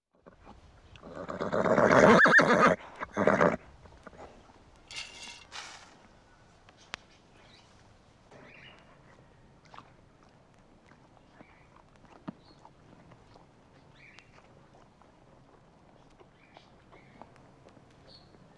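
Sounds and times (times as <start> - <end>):
horse neighing: 1.0 - 3.6.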